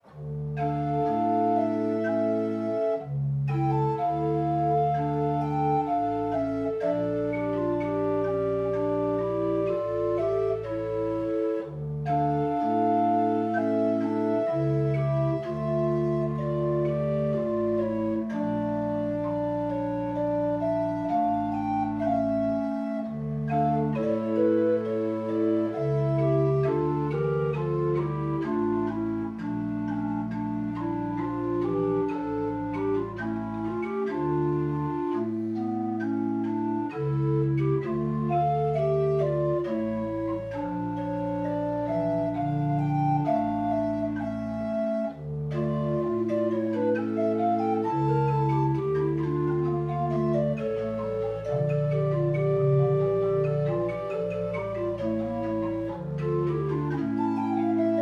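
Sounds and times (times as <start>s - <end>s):
pipe organ: 0.0s - 57.9s.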